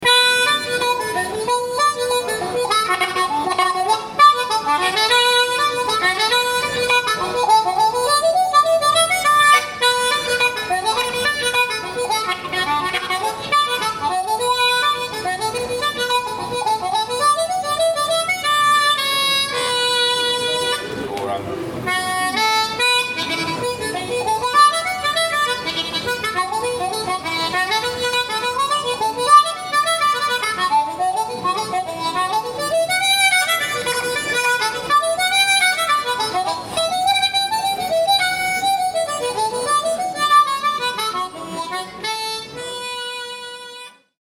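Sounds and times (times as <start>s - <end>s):
variation on an Irish folk tune: 0.0s - 44.1s.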